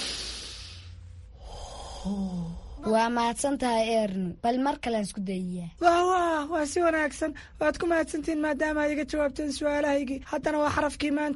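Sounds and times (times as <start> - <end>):
deep breath taken as a calming breathing exercise: 0.0 - 2.9
speech: 2.0 - 11.3.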